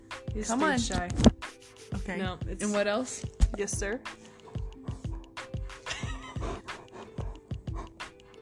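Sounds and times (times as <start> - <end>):
speech: 0.3 - 4.2
dog panting: 4.2 - 5.8, 6.3 - 8.3.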